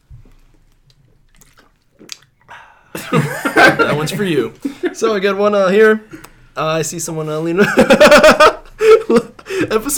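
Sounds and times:
person sipping a drink of water: 0.2 - 2.6
slurp of water: 1.0 - 2.5
laughter: 3.0 - 5.0, 7.6 - 9.5
speech: 3.0 - 8.5, 9.1 - 9.9.

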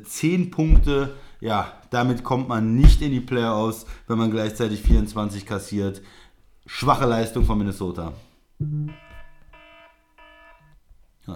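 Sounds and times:
speech: 0.0 - 9.0
soft electronic ringing tone: 8.6 - 10.7.

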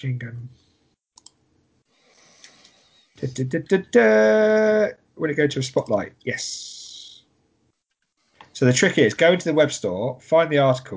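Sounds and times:
speech: 0.0 - 0.7, 3.2 - 6.8, 8.6 - 10.9
clicks of typing on a computer keyboard: 1.2 - 1.4.

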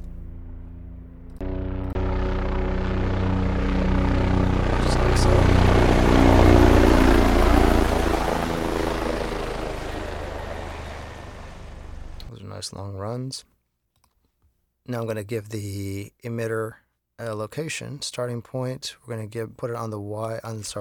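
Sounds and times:
helicopter passing by with rotor thumping and engine droning: 0.0 - 12.3
speech: 13.0 - 13.6, 14.9 - 20.7.

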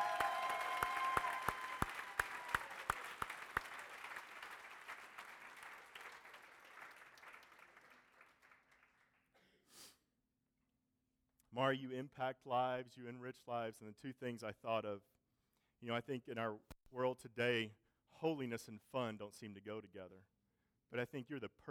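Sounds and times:
audience applause: 0.0 - 9.0
speech: 11.6 - 15.1, 15.8 - 20.3, 20.9 - 21.6.

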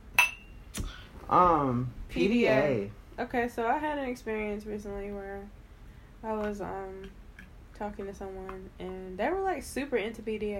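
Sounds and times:
two wine glasses clinking in a toast: 0.1 - 0.6
speech: 1.3 - 5.6, 6.2 - 7.2, 7.8 - 10.5.

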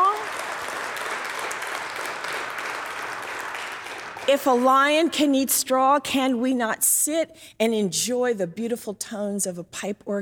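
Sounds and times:
congregation clapping in a church sanctuary: 0.0 - 5.5
speech: 4.3 - 10.2.

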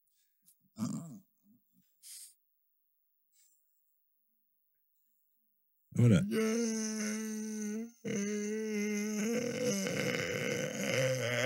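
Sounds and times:
burp-like croak: 0.8 - 1.2, 8.0 - 11.4
speech: 6.0 - 7.2.

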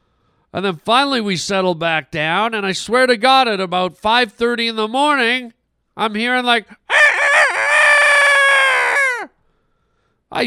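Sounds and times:
speech: 0.5 - 6.8
rooster crowing: 6.9 - 9.3.

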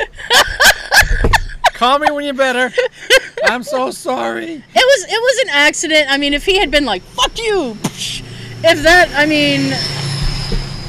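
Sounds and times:
laughter: 0.0 - 4.4
speech: 1.8 - 9.9
loud truck roaring past: 6.2 - 10.8.

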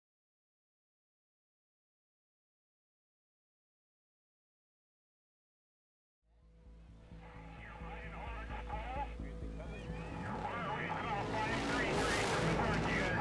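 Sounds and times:
indistinct voices: 7.8 - 13.2
off-road racing motorbike engines whining and revving in the Baja 1000 race in Mexico: 8.4 - 13.2.

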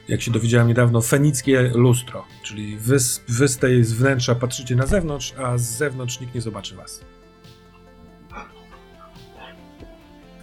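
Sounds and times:
speech: 0.1 - 7.2
dog barking: 8.3 - 9.6.

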